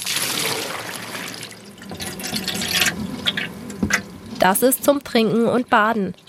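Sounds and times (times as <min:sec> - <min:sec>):
water pouring into a water bowl in a corn snake terrarium: 0:00.0 - 0:04.4
water splashing and dripping: 0:00.0 - 0:05.0
water plops: 0:00.6 - 0:04.5
speech: 0:04.4 - 0:06.2.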